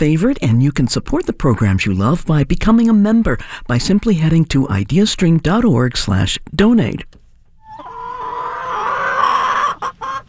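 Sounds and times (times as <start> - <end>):
speech: 0.0 - 7.2
chicken squawking and clucking: 7.6 - 10.2.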